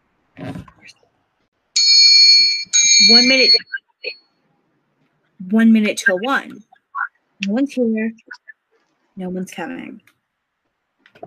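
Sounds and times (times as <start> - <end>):
bright high clock chime: 1.8 - 3.6
speech: 3.1 - 3.8, 5.5 - 6.7, 7.4 - 8.4, 9.2 - 10.1.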